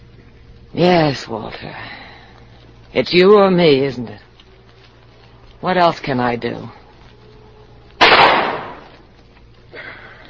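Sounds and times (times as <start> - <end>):
speech: 0.8 - 2.0, 2.9 - 4.3, 5.6 - 6.8
gunshot: 8.0 - 9.0.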